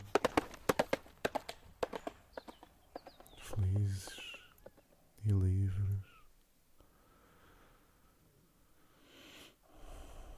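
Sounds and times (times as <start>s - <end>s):
horses' hooves clip-clopping: 0.0s - 5.2s
faint high birds chirping: 0.0s - 7.1s.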